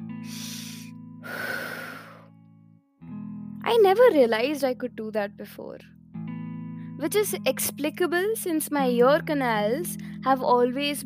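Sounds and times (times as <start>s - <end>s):
person breathing while lying on a cold floor: 0.2s - 2.3s
speech: 3.7s - 6.0s, 7.0s - 11.0s.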